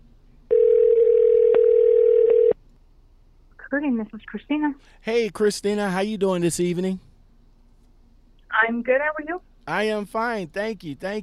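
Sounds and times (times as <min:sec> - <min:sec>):
telephone ringing tone of an outgoing call: 0:00.5 - 0:02.6
speech: 0:03.7 - 0:07.1, 0:08.7 - 0:11.2.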